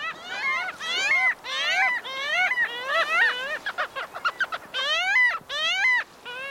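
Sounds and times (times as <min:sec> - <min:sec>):
parasitic jaeger giving nasal wailing calls: 0:00.0 - 0:06.5.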